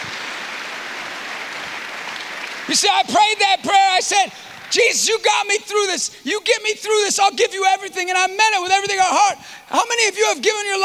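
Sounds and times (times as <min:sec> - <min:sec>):
audience applause from a gathering honoring men recovering from addiction: 0:00.0 - 0:03.6
speech: 0:02.7 - 0:10.8.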